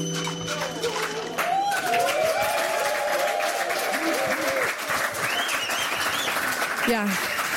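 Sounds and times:
studio audience applauding: 0.5s - 7.5s
studio audience cheering and whooping: 1.1s - 6.6s
speech: 6.9s - 7.3s.

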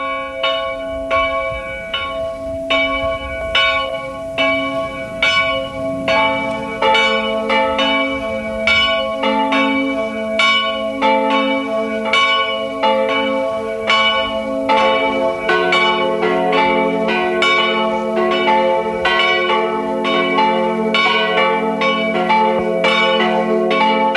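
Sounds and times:
several church bells pealing together: 0.0s - 24.1s.

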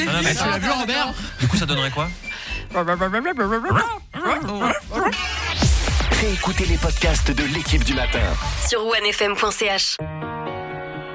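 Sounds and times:
speech: 0.0s - 10.4s
dogs whining: 3.2s - 5.2s.

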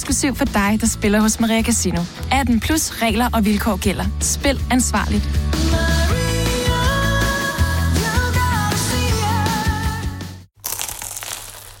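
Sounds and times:
music: 0.0s - 10.5s
speech: 0.1s - 5.8s
crunching bite into a crisp flaky croissant in Paris: 10.6s - 11.7s.

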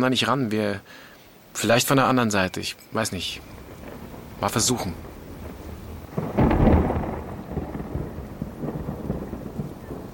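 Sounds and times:
speech: 0.0s - 3.6s, 4.4s - 5.1s
rain pattering: 0.0s - 10.1s
thunder rumbling: 3.1s - 10.1s.

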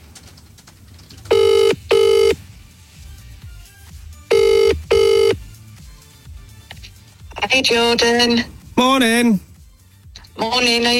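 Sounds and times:
phone outgoing ringback tone while placing a call: 1.3s - 2.4s, 4.3s - 5.4s
speech: 7.5s - 9.5s, 10.4s - 10.9s.

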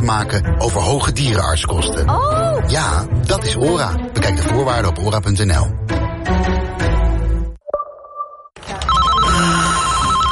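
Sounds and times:
busy music-like sound: 0.0s - 7.6s
speech: 0.1s - 7.0s
telephone ringing with trilling electronic tone: 8.8s - 10.3s.

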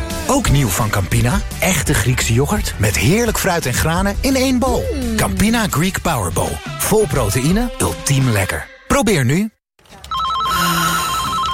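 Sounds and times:
speech: 0.3s - 9.6s
telephone bell ringing: 10.1s - 11.5s.

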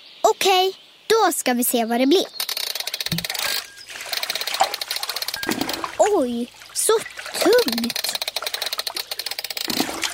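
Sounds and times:
speech: 0.4s - 2.4s, 3.1s - 3.3s, 6.1s - 8.2s
water sloshing: 3.1s - 10.1s.

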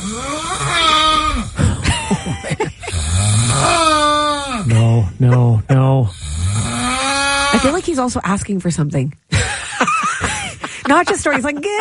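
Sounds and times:
sleeping man snoring loudly: 0.0s - 7.8s
laughter: 1.6s - 3.0s, 4.7s - 6.0s, 9.3s - 11.8s
speech: 5.2s - 6.2s, 7.6s - 9.4s, 10.9s - 11.8s.

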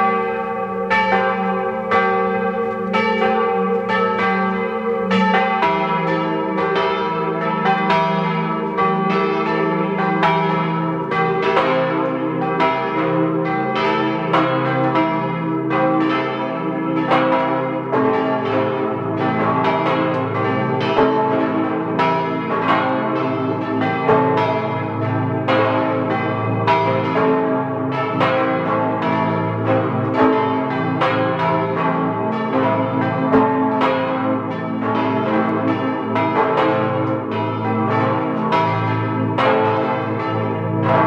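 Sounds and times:
parish church bells pealing at noon: 0.0s - 41.0s.

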